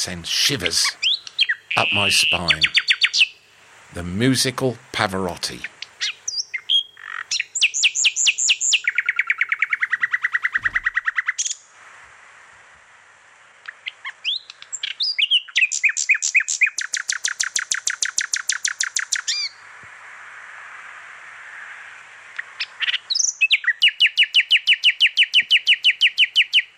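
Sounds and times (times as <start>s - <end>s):
speech: 0.0s - 1.0s, 1.8s - 3.2s, 3.9s - 6.2s
nightingale singing: 0.0s - 4.6s, 5.3s - 11.7s, 13.6s - 19.7s, 22.4s - 26.7s.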